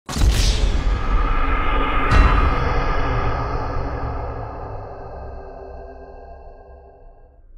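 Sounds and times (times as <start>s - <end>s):
wasted custom sound effect: 0.1s - 7.5s.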